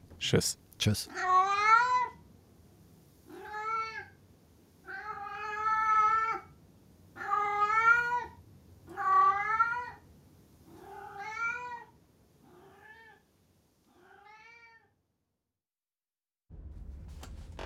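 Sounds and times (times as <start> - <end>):
speech: 0.2 - 1.3
cat meowing insistently: 1.1 - 2.2, 3.3 - 4.1, 4.8 - 6.5, 7.2 - 10.0, 10.7 - 13.2, 13.9 - 15.0.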